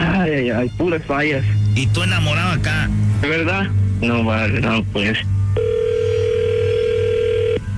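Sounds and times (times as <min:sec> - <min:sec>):
speech: 0:00.2 - 0:05.4
telephone ring tone while a call is redialed: 0:05.6 - 0:07.7.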